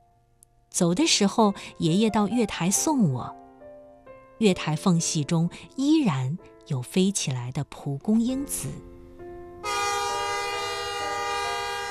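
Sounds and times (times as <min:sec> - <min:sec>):
speech: 0:00.8 - 0:03.4, 0:04.4 - 0:08.9
train horn: 0:09.6 - 0:11.8.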